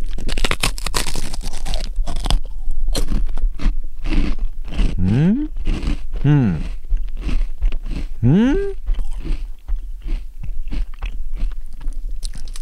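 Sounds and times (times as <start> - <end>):
person biting and chewing a salted giant isopod rice cracker: 0.0 - 12.6
brief voiced sounds: 5.0 - 5.5, 6.2 - 6.6, 8.2 - 8.8.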